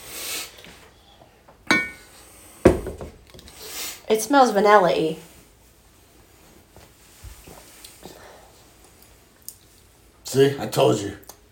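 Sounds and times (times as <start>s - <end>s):
small glass set down on a hard surface: 1.7s - 2.1s
speech: 4.1s - 5.3s, 10.4s - 11.3s.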